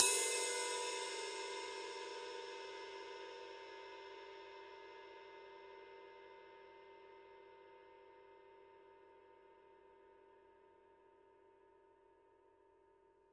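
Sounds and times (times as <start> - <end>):
heavy 20-inch ride cymbal body: 0.0 - 3.6.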